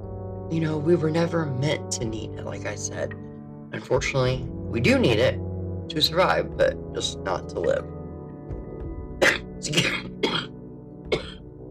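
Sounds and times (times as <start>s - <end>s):
speech: 0.5s - 8.0s, 9.6s - 10.3s
person coughing: 9.2s - 11.4s.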